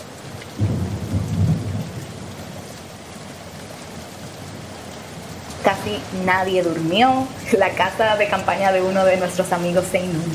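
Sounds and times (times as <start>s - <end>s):
steady heavy rain at night at a campsite near a river: 0.0s - 10.3s
low rumble of thunder at night at a campsite near a river: 0.5s - 5.4s
speech: 5.8s - 10.3s.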